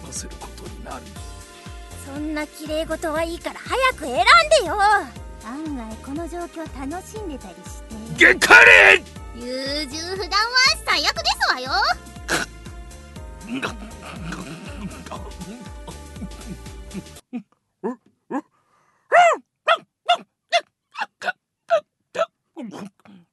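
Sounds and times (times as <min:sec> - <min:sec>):
speech: 0:00.1 - 0:01.4, 0:02.0 - 0:12.4, 0:13.5 - 0:14.4
dog barking wildly: 0:08.2 - 0:09.0, 0:19.1 - 0:20.2.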